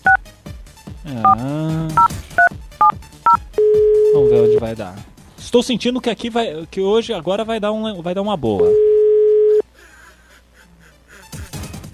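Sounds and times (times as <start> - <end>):
speech: 1.1 - 2.6, 4.1 - 8.8
telephone dial tone while calling a radio station: 3.6 - 4.6, 8.6 - 9.6.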